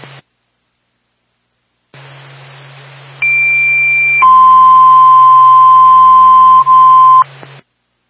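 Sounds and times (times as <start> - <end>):
hiss and hum: 0.0 - 8.0
fire dispatch alert tone over radio: 3.2 - 7.2.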